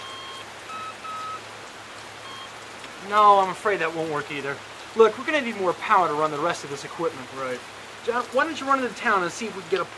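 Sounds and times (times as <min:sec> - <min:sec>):
faint electronic beeping tones: 0:00.0 - 0:01.4, 0:02.2 - 0:02.6
steady rain falling: 0:00.0 - 0:09.9
speech: 0:03.0 - 0:09.9.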